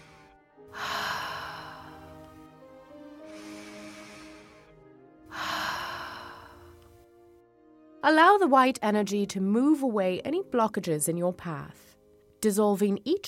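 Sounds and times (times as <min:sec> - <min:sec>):
deep slow purifying breaths during a guided meditation: 0:00.0 - 0:06.9
speech: 0:08.0 - 0:13.2.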